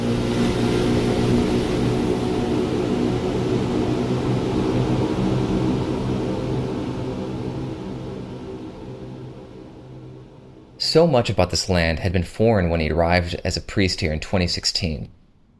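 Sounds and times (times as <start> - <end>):
riverboat outboard motor droning: 0.0 - 10.7
speech: 11.0 - 15.2.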